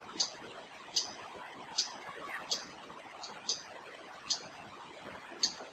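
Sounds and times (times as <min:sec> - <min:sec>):
Spectacled Spiderhunter calls: 0:00.1 - 0:01.2, 0:01.8 - 0:03.7, 0:04.3 - 0:04.5, 0:05.4 - 0:05.6.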